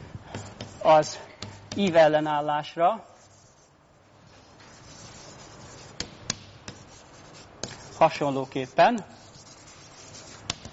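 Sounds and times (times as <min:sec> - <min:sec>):
speech: 0:00.8 - 0:03.1, 0:08.0 - 0:09.1
handwriting on a page while annotating notes: 0:03.2 - 0:03.7, 0:04.5 - 0:10.6.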